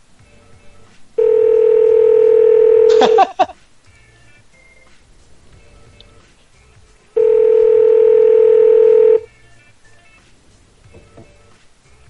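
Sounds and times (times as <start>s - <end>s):
telephone ringback tone over the line of a call: 1.2s - 3.2s, 7.2s - 9.3s
laughter: 2.9s - 3.6s.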